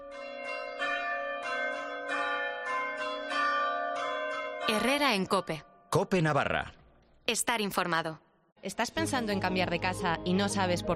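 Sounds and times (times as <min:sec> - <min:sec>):
church bells in Navarra ringing a composed melody for a climate bell-ringing initiative: 0:00.0 - 0:05.4
speech: 0:04.7 - 0:10.9.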